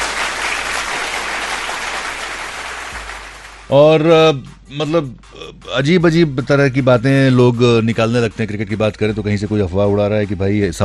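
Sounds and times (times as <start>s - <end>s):
crowd applauding: 0.0s - 3.7s
speech: 3.7s - 10.8s.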